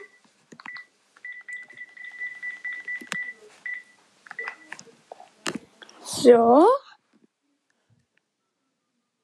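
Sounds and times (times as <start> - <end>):
electronic phone keypad tones as a number is dialed: 0.0 - 4.8
speech: 6.2 - 6.8.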